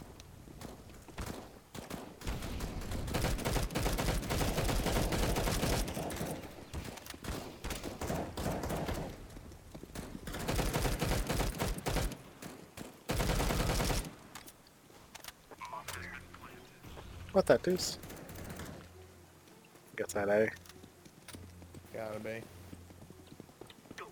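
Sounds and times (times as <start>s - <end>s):
video game AK rifle automatic gunfire: 0.6s - 9.2s, 9.9s - 14.2s
speech: 17.4s - 18.0s, 20.2s - 20.6s, 22.2s - 22.5s.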